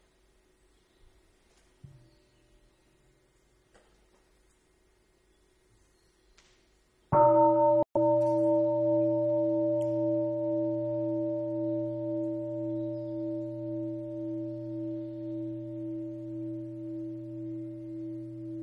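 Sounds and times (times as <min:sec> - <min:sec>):
meditation bell struck during a Buddhist dharma talk: 0:07.2 - 0:18.6.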